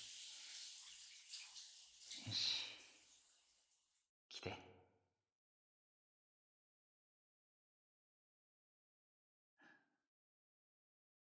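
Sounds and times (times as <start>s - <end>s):
running water rinsing off soap foam: 0.0s - 4.0s
speech: 2.2s - 2.8s, 4.4s - 4.7s.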